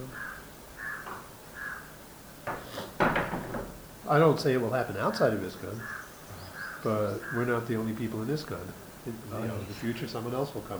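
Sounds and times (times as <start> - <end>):
door creaking on its hinges: 0.0 - 5.4
door shutting with solid knocks: 2.3 - 4.6
speech: 4.1 - 6.0, 6.8 - 10.7.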